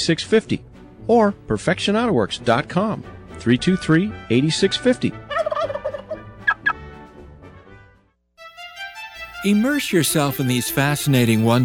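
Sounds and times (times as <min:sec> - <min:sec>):
speech: 0:00.0 - 0:05.2, 0:09.4 - 0:11.6
turkeys gobbling: 0:05.3 - 0:06.8.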